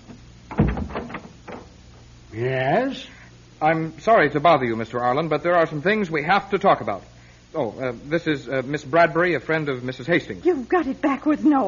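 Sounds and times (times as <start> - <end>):
door latch and handle thump: 0.5 - 1.7
speech: 2.4 - 11.6.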